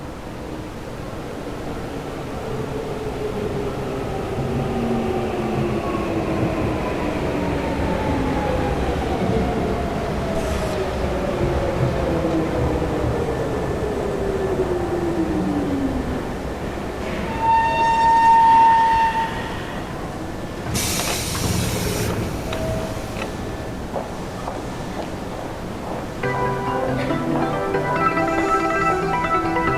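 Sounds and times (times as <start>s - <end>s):
electric train pulling into a station platform rumbling: 0.0s - 29.7s
electric train high squeal: 17.1s - 20.1s.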